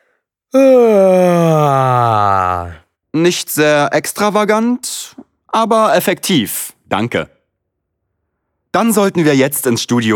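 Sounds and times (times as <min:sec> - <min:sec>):
speech: 0:00.5 - 0:00.7, 0:03.2 - 0:07.4, 0:08.7 - 0:10.1
loud yawn from one person raising the arms: 0:00.5 - 0:02.8.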